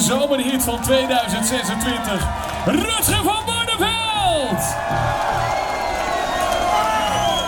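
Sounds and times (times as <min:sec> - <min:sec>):
large audience clapping after a live performance: 0:00.0 - 0:07.4
speech: 0:00.1 - 0:03.6
audience whoops and shouts: 0:04.1 - 0:07.4.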